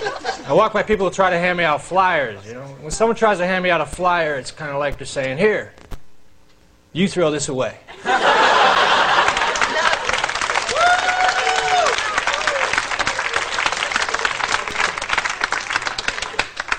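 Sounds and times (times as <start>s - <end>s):
audience chuckling: 0.0s - 0.5s, 7.9s - 10.6s, 12.8s - 16.6s
speech: 0.1s - 5.9s, 6.9s - 9.0s
comedy crowd applause at a stand-up show: 8.3s - 16.7s.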